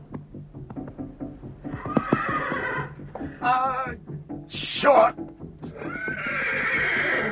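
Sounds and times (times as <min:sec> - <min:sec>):
horse neighing and whinnying: 0:01.7 - 0:03.1, 0:05.7 - 0:07.2
speech: 0:04.8 - 0:05.2.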